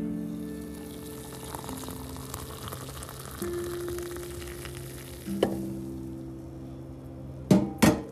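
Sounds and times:
hot water heating in a small red teapot for coffee: 0.4 - 6.2.

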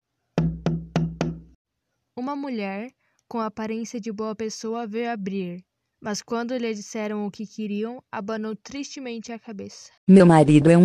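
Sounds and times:
firm knocking on a wooden door: 0.4 - 1.6
speech: 2.2 - 10.8.

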